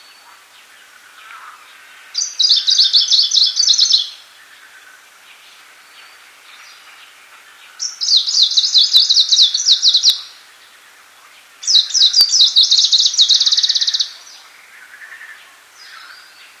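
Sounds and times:
Icterine warbler singing buzzy trilled phrases: 0:00.0 - 0:16.5.

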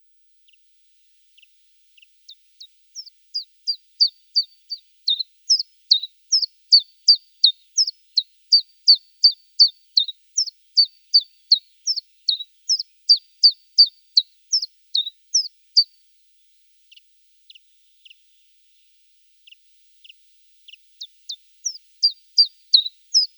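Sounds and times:
East European subspecies of chiffchaff singing: 0:03.0 - 0:15.5.

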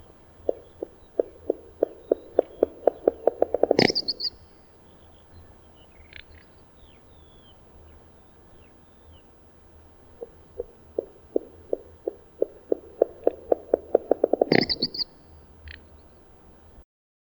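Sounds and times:
little bustard calling with clicking pulses: 0:00.0 - 0:06.2, 0:10.1 - 0:15.2
steady low hum: 0:00.0 - 0:16.8.

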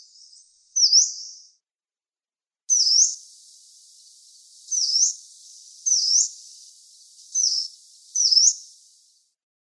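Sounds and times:
yellow-browed warbler giving short high dipping-then-rising whistled notes: 0:02.7 - 0:09.3.

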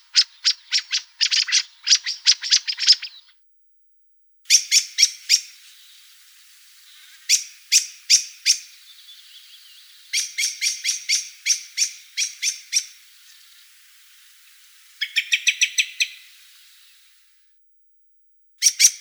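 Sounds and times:
black-throated thrush giving clicking chattering calls: 0:00.0 - 0:03.3, 0:04.5 - 0:17.2.

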